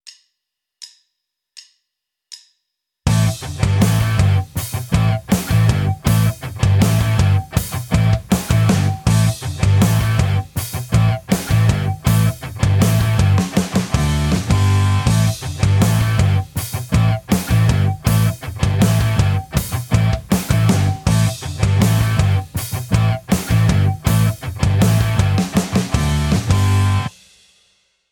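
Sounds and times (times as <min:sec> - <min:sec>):
tapped harmonics on guitar: 0:03.1 - 0:27.1.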